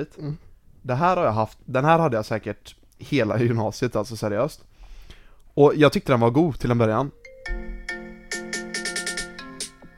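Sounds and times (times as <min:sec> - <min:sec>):
speech: 0:00.0 - 0:04.7, 0:05.6 - 0:07.8
melodic phone ringtone played as alarm: 0:07.2 - 0:09.9.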